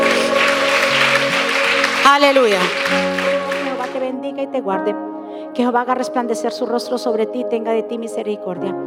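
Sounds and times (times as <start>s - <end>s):
audience applauding at a Christian worship service: 0.0s - 4.1s
sustained keyboard chords: 0.0s - 8.8s
speech: 2.1s - 3.2s, 4.2s - 8.8s.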